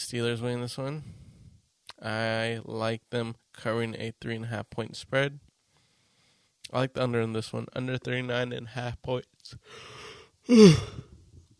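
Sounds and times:
speech: 0.0s - 1.2s, 2.0s - 5.5s, 6.7s - 11.1s
long yawn with drawn-out voiced groan: 10.5s - 11.1s.

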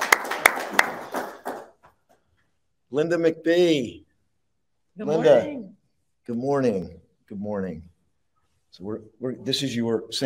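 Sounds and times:
hands clapping: 0.0s - 2.2s
speech: 2.9s - 4.1s, 5.0s - 5.7s, 6.3s - 7.9s, 8.7s - 10.2s.

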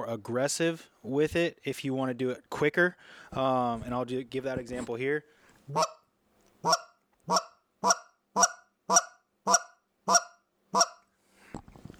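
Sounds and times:
speech: 0.1s - 6.0s, 6.6s - 10.9s
goose call blown in sharp clucks imitating a goose: 5.7s - 6.0s, 6.6s - 11.1s.

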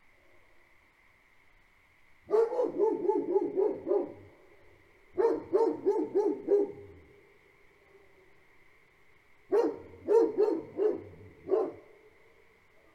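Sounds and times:
Great Pyrenees livestock guardian dogs barking on a farm at night: 2.3s - 4.3s, 5.2s - 7.0s, 9.5s - 11.9s
frog chorus: 2.3s - 12.9s.

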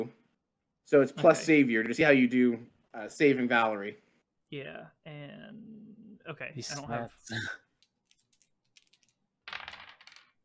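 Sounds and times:
speech: 0.9s - 7.6s
dice tumbling across a hard surface: 7.7s - 10.4s.

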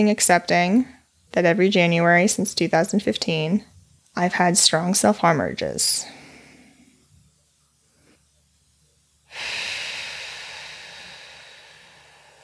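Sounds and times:
speech: 0.0s - 6.2s
slow deep breathing: 6.1s - 7.1s, 9.3s - 12.4s.

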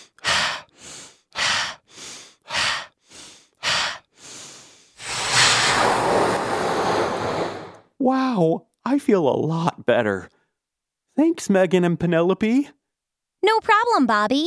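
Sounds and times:
deep breathing: 0.0s - 7.8s
speech: 8.0s - 10.4s, 11.2s - 12.8s, 13.4s - 14.4s.

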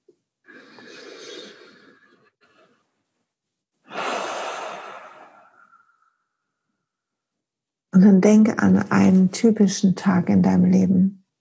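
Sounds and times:
deep breath in and out during a guided calming exercise: 0.5s - 2.9s, 3.8s - 6.4s
speech: 8.0s - 11.2s.

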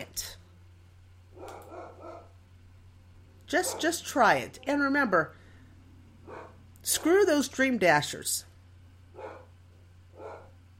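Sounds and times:
steady low electrical hum: 0.0s - 10.7s
dog barking at the mail carrier: 1.4s - 2.4s, 3.6s - 4.8s, 6.2s - 7.1s, 9.1s - 9.5s, 10.1s - 10.6s
speech: 3.5s - 5.4s, 6.8s - 8.5s.

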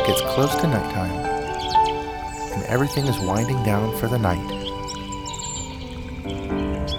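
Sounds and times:
birds chirping in the woods: 0.0s - 6.9s
rushing running water: 0.0s - 6.9s
speech: 0.1s - 1.2s, 2.6s - 4.6s.

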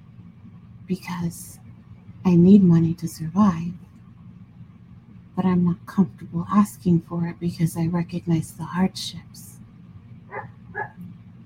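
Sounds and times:
low rumble: 0.0s - 11.4s
speech: 0.9s - 1.6s, 2.2s - 3.9s, 5.4s - 9.5s
dog barking: 10.3s - 11.0s.

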